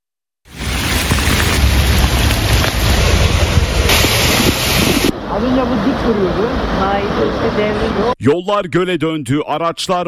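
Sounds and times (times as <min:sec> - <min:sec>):
heavy rain downpour: 0:00.5 - 0:08.1
wind-like rumble: 0:00.5 - 0:08.1
speech: 0:05.4 - 0:10.0.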